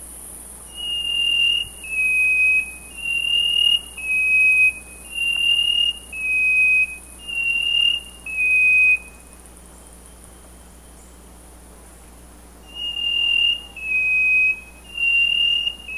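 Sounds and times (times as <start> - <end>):
steady background hiss: 0.0 - 15.9
Chestnut-breasted wren singing sustained whistles in Ecuador: 0.7 - 9.2, 12.7 - 15.9.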